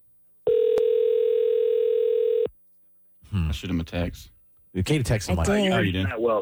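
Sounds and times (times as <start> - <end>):
outgoing telephone call ring tone: 0.5 - 2.5
speech: 3.5 - 6.4.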